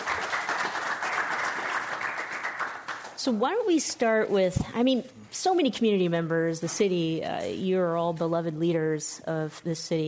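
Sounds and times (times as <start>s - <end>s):
audience applauding a panel: 0.0s - 3.2s
speech: 3.2s - 10.0s.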